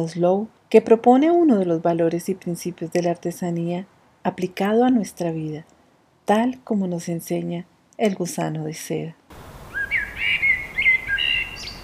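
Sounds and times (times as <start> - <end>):
speech: 0.0 - 9.5
Colombian bird singing whistled chirps: 9.7 - 11.8.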